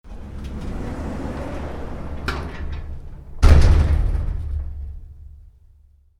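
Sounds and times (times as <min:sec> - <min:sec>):
garage door shut manually: 0:00.1 - 0:05.5.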